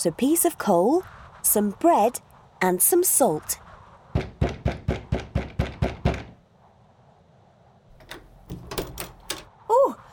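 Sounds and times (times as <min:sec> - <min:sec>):
speech: 0:00.0 - 0:03.6
man knocking on a front door: 0:04.1 - 0:06.4, 0:08.5 - 0:09.4.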